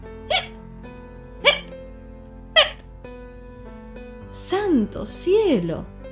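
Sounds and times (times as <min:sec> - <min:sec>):
person hiccuping: 0:00.3 - 0:00.6, 0:01.4 - 0:01.7, 0:02.6 - 0:02.8
speech: 0:04.4 - 0:06.0.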